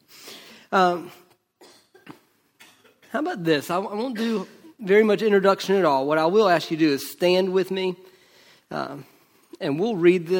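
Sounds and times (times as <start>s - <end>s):
speech: 0.7s - 1.2s, 3.1s - 8.1s, 8.7s - 10.3s
person with allergies coughing into microphone: 1.6s - 3.2s, 3.9s - 4.8s.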